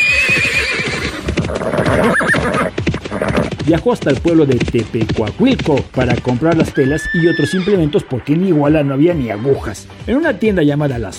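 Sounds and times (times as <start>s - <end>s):
horse neighing: 0.0s - 3.6s, 6.2s - 8.0s
horse snorting: 0.0s - 7.9s
horse hoofbeats clip-clopping: 0.0s - 11.0s
speech: 3.7s - 11.1s.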